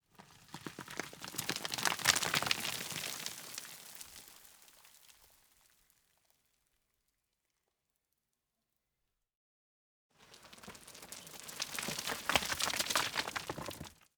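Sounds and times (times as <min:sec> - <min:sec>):
heavy dusty rock debris falling: 0:00.9 - 0:03.6, 0:10.6 - 0:14.0.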